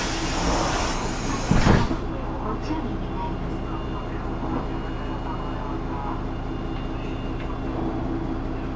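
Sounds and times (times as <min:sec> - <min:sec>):
train sliding doors hissing and thudding shut: 0:00.0 - 0:02.3
train rumbling while pulling away: 0:00.0 - 0:08.6.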